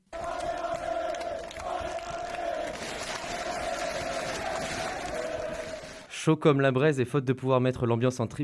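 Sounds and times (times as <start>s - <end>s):
large crowd of football supporters chanting and roaring at the stadium: 0.1s - 6.1s
speech: 6.2s - 8.4s.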